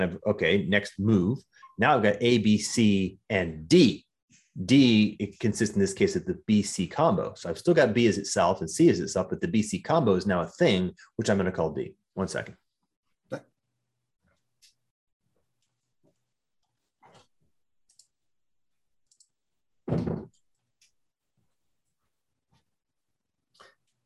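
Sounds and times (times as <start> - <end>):
speech: 0.0 - 12.6
door thump: 19.9 - 20.3.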